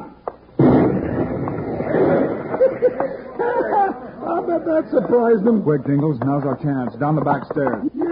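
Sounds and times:
bomb explosion with sustained rumbling roar: 0.6 - 2.6
crackling debris-like noise: 0.6 - 3.1
laughter: 1.8 - 5.4
speech: 4.5 - 8.0.

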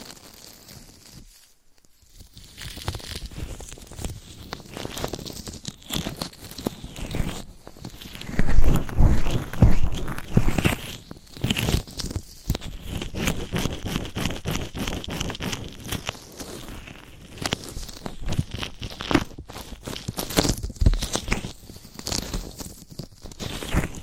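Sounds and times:
ear scratching and brushing at the microphone: 2.6 - 24.0.

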